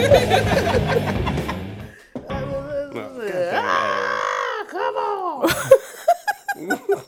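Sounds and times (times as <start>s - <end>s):
laughter: 0.0s - 1.9s, 3.2s - 7.0s
man groaning and crying out: 2.3s - 5.4s
man screaming: 2.3s - 5.4s.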